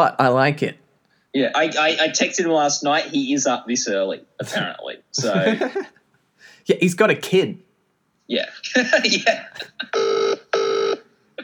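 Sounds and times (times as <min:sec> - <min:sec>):
speech: 0:00.0 - 0:07.6, 0:08.3 - 0:10.2
laughter: 0:05.2 - 0:06.0, 0:08.6 - 0:10.0
telephone ring tone heard down the line: 0:09.9 - 0:11.2.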